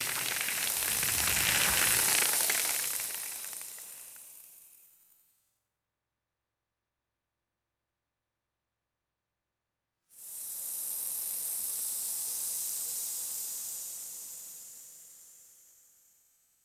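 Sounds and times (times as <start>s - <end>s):
light dry sand falling and scattering: 0.0s - 3.9s.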